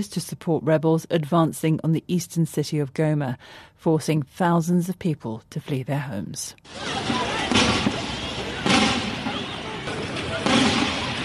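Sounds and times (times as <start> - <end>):
speech: 0.0 - 7.7
noisy outdoor background in Goma city centre: 0.0 - 11.2
gunfire bursts in Goma city centre, Democratic Republic of Congo: 6.7 - 11.2
indistinct voices: 6.7 - 11.2.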